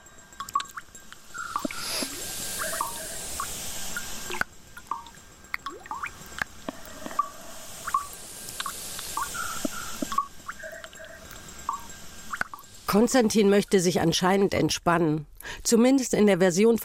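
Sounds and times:
steady hiss: 0:00.0 - 0:14.5
wet drips and squelches: 0:04.3 - 0:12.6
speech: 0:12.9 - 0:16.8.

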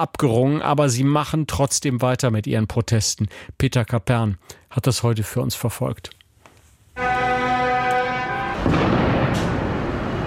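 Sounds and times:
speech: 0:00.0 - 0:06.2
car horn blaring at a farmers' protest: 0:07.0 - 0:08.7
booming firecracker bangs at a farmers' protest: 0:08.0 - 0:10.2.

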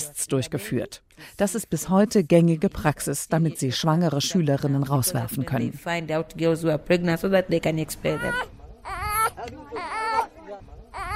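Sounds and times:
speech: 0:00.1 - 0:08.6
baby boy crying after waking up: 0:08.1 - 0:11.1.

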